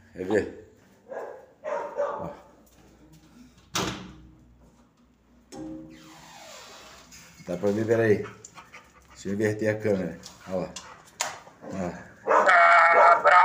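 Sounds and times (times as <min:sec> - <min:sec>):
speech: 0:00.2 - 0:00.6, 0:07.5 - 0:08.4, 0:09.2 - 0:10.8, 0:11.8 - 0:12.1
dog barking: 0:01.0 - 0:02.5, 0:11.6 - 0:13.4.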